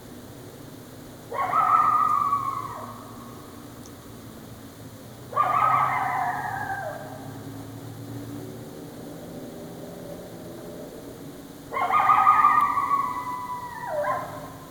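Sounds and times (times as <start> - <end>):
coyote harsh bark-howls: 1.3 - 3.4, 5.3 - 7.3, 11.7 - 14.7.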